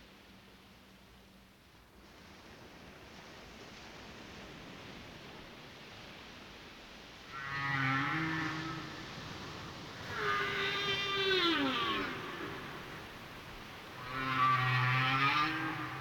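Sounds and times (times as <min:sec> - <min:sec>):
steady low rumble of ocean noise: 0:00.1 - 0:16.0
whale song with sliding tonal moans and harmonic calls: 0:07.3 - 0:16.0.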